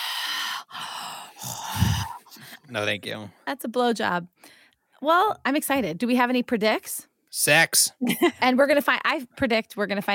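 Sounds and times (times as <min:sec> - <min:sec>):
voice imitating heavy respirator breathing: 0:00.0 - 0:02.4
speech: 0:02.7 - 0:10.1.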